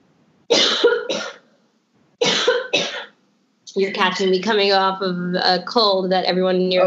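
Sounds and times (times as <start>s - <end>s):
person coughing: 0.5s - 1.4s, 2.2s - 3.1s
speech: 3.8s - 6.8s.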